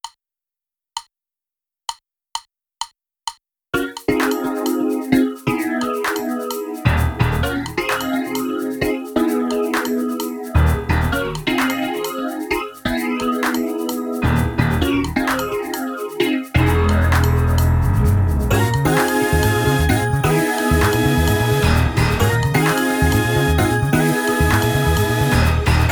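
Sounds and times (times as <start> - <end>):
drumless fusion music: 3.8 - 25.9.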